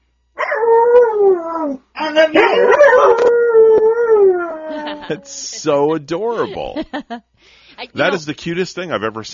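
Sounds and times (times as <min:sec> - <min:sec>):
dog howling with a wavering falling pitch: 0:00.4 - 0:05.4
laughter: 0:04.6 - 0:07.2
speech: 0:05.1 - 0:09.3.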